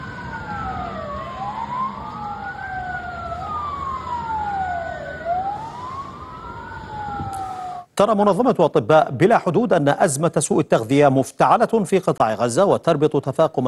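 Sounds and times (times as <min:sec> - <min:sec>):
ambulance sirens wailing in the central Gaza Strip: 0:00.0 - 0:07.9
low traffic rumble: 0:00.0 - 0:10.3
speech: 0:08.0 - 0:13.6.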